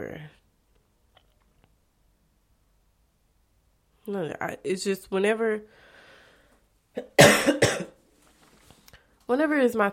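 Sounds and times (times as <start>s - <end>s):
speech: 4.1s - 5.8s, 7.0s - 7.7s, 9.3s - 9.9s
sick person coughing: 7.0s - 8.0s.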